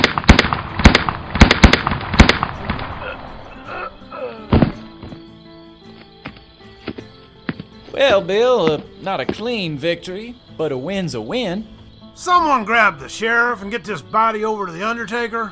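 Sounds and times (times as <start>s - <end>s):
video game gunshots in a Western duel: 0.0s - 3.3s, 4.5s - 5.1s
speech: 8.0s - 15.5s.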